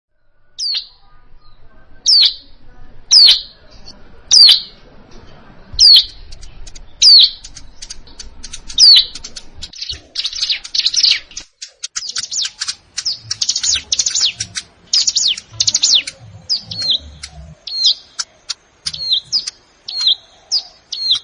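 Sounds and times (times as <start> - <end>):
plain prinia singing: 0.2 - 21.2.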